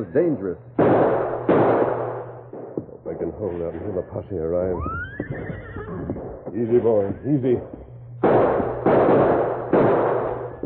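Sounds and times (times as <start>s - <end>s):
speech: 0.0s - 1.2s, 3.2s - 9.8s
revolver gunshots as a radio drama sound effect: 0.8s - 2.8s, 8.2s - 10.6s.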